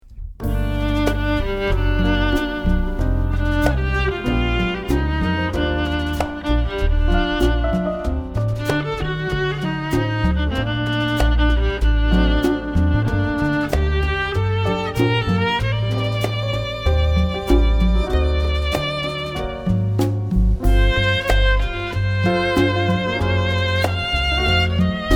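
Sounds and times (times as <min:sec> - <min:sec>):
jazz quartet with violin: 0:00.0 - 0:25.1.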